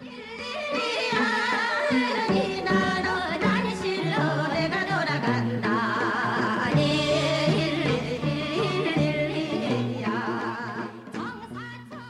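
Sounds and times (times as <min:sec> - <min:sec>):
traditional Korean folk song recording: 0:00.0 - 0:12.0.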